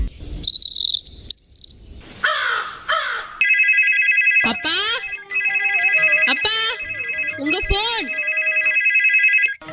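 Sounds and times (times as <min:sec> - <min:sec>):
chirpy tones: 0:00.1 - 0:02.0, 0:03.4 - 0:09.3
phone with bright warbling electronic ringtone ringing: 0:03.4 - 0:09.7.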